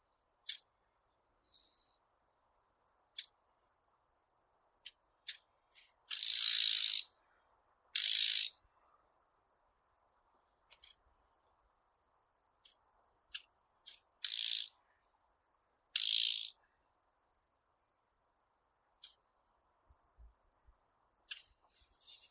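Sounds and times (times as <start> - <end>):
Blyth's reed warbler Acrocephalus dumetorum: 6.1 - 7.1, 8.0 - 8.6, 14.2 - 14.7, 16.0 - 16.5.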